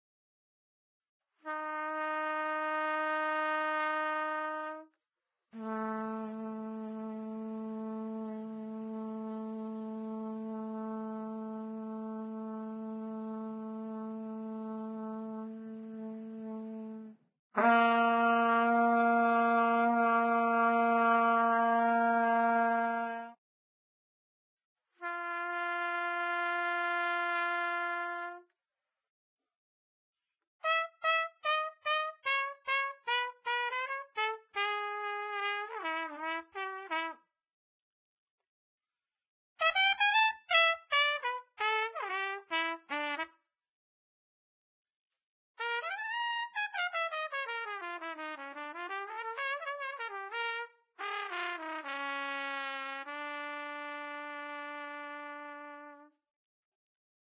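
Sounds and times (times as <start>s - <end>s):
trumpet playing: 1.4s - 4.8s, 5.6s - 23.4s, 25.0s - 28.4s, 30.6s - 37.2s, 39.6s - 43.3s, 45.6s - 56.1s.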